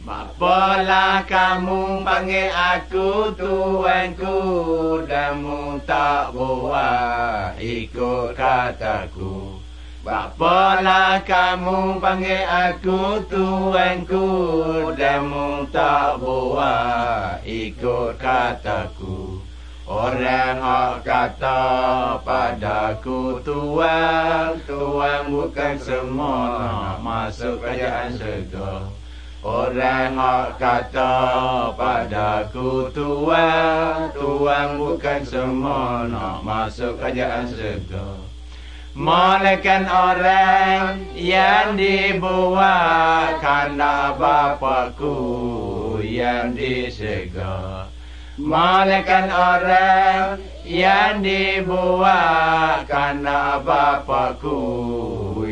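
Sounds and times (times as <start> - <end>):
Malay Pattani songs: 0.0 - 55.5.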